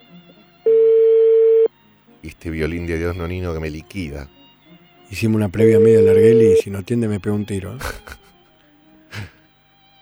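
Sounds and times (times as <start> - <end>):
faint low noise: 0.0 - 10.0
telephone ringing tone on an outgoing call: 0.7 - 1.7, 5.5 - 6.6
speech: 2.2 - 4.4, 5.1 - 8.2
laughter: 5.2 - 8.3, 9.2 - 9.4.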